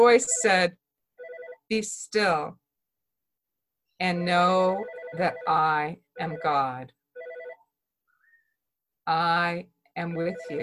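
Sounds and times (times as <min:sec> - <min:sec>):
speech: 0:00.0 - 0:00.8, 0:01.7 - 0:02.6, 0:04.0 - 0:07.0, 0:09.1 - 0:10.6
mobile phone ringing: 0:01.2 - 0:01.7, 0:04.7 - 0:07.7, 0:10.1 - 0:10.6.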